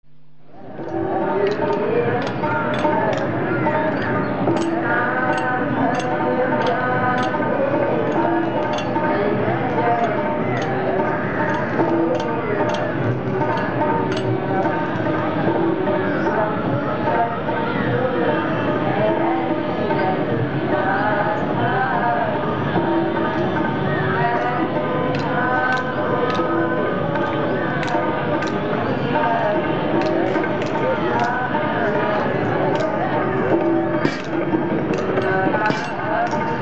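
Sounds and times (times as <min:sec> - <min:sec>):
temple song in Laxman Jhula Rishikesh: 0:00.2 - 0:36.6
industrial sounds in Laxman Jhula Rishikesh: 0:00.6 - 0:15.5, 0:24.4 - 0:36.6.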